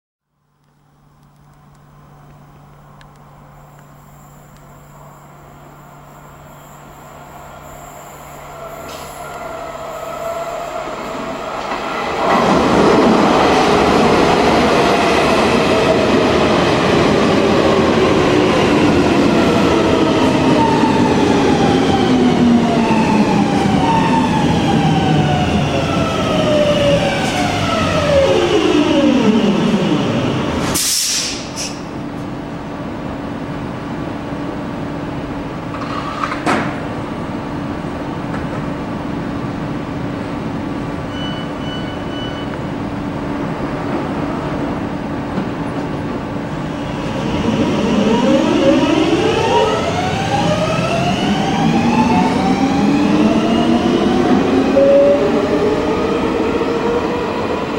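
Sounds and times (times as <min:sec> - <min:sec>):
M100 metro train in Helsinki: 0:00.7 - 0:57.7.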